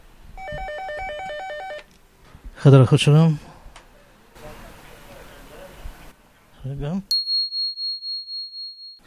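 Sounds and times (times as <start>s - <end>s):
telephone ringing with electronic trill: 0.4s - 1.9s
speech: 2.6s - 3.5s.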